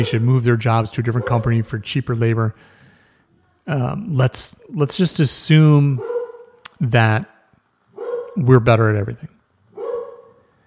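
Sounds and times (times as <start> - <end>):
speech: 0.0 - 2.8, 3.7 - 6.1, 6.8 - 7.3, 8.4 - 9.4
dog barking: 1.2 - 1.5, 6.0 - 6.6, 8.0 - 8.4, 9.7 - 10.5.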